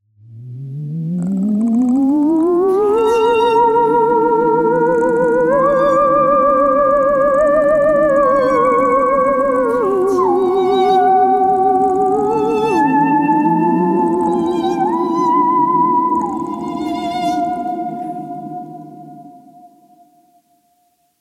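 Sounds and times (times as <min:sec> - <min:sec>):
spooky theremin: 0:00.2 - 0:20.2.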